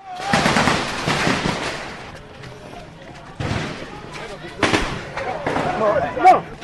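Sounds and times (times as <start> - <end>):
bursts of gunshots fired at people in a stadium: 0.2 - 2.2, 4.6 - 5.9.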